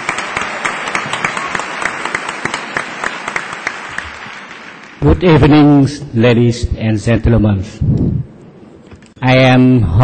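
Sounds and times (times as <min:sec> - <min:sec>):
audience applause welcoming a speaker at an evening awards event: 0:00.0 - 0:05.0
speech: 0:05.0 - 0:08.3, 0:09.2 - 0:10.0.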